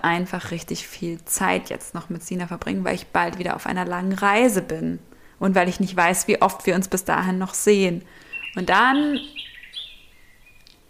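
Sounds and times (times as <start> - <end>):
speech: 0.0 - 9.4
lark singing in trilling bursts: 8.2 - 10.7.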